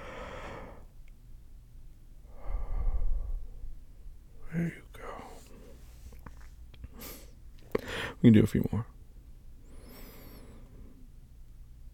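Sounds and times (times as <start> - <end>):
deep breath during a calming breathing exercise: 0.0 - 0.9, 2.3 - 3.9, 6.9 - 8.2, 9.6 - 11.1
speech: 8.2 - 9.0.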